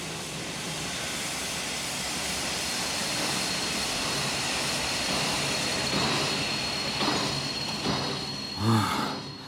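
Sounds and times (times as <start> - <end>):
train braking hard: 0.0 - 9.4
faint high squeal: 3.5 - 9.4.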